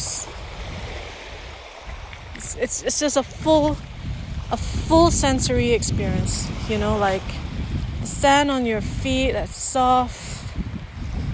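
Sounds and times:
ocean waves breaking on the shore: 0.0s - 11.3s
speech: 2.6s - 3.9s, 4.5s - 7.4s, 8.2s - 10.2s.

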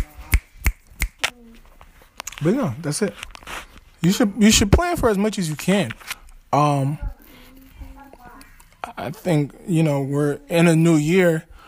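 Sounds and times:
crisp finger snaps: 0.0s - 1.4s
speech: 2.4s - 3.3s, 4.0s - 7.0s, 9.0s - 11.5s.

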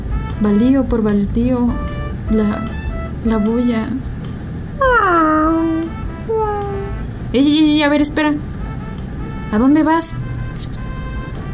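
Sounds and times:
low hum: 0.0s - 11.5s
speech: 0.4s - 4.1s, 7.3s - 8.5s, 9.5s - 10.2s
old female cat meowing at night: 6.3s - 7.0s.

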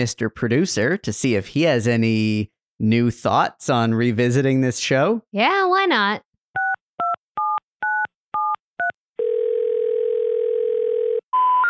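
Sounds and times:
speech: 0.0s - 6.3s
two-tone telephone keypad beeps: 6.6s - 9.0s
long steady telephone tone: 8.4s - 11.6s
brief telephone tone stepping up in pitch: 9.2s - 11.6s.

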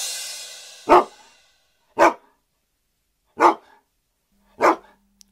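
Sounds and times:
dog barking: 0.9s - 1.3s, 1.9s - 2.4s, 3.3s - 3.9s, 4.5s - 5.0s.

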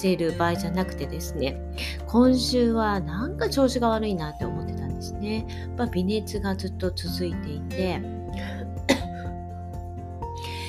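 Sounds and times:
speech: 0.0s - 9.0s
person coughing: 8.4s - 9.3s.

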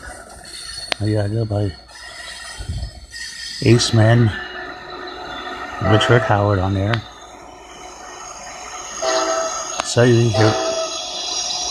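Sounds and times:
passing train rail rumble: 0.0s - 11.6s
speech: 1.0s - 1.8s, 3.6s - 4.4s, 5.8s - 7.1s, 10.0s - 10.7s
passing train horn blast: 5.8s - 6.7s, 8.9s - 11.2s.

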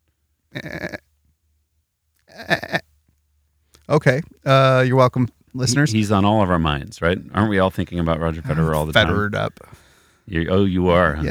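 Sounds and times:
speech: 0.5s - 0.9s, 3.9s - 11.2s
goat bleating: 0.6s - 1.0s, 2.3s - 2.8s, 8.1s - 9.7s, 10.8s - 11.2s
laughter: 4.5s - 11.2s.

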